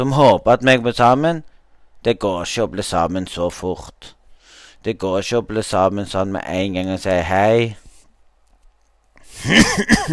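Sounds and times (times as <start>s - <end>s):
speech: 0.0s - 4.2s, 4.8s - 7.8s, 9.4s - 10.1s
person coughing: 9.3s - 10.1s.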